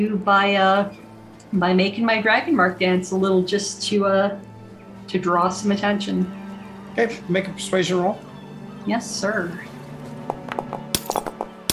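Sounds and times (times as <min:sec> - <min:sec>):
speech: 0:00.0 - 0:04.5, 0:05.1 - 0:06.4, 0:07.0 - 0:09.7
glass breaking: 0:10.9 - 0:11.7.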